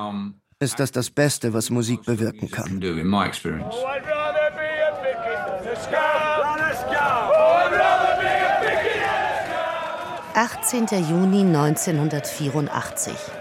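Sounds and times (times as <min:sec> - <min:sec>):
speech: 0:00.0 - 0:04.2, 0:05.7 - 0:06.1, 0:10.4 - 0:13.3
large crowd of striking union pickets shouting and chanting at a coking plant: 0:03.6 - 0:13.3.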